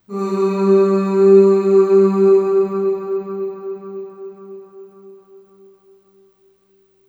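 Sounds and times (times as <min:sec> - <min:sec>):
short ooh vocal on G2 with long reverb: 0:00.0 - 0:05.8.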